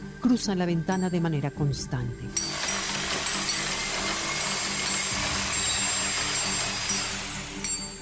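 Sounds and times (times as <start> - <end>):
speech: 0.2 - 2.6
concrete drill grinding during neighbours' building works: 2.4 - 7.9.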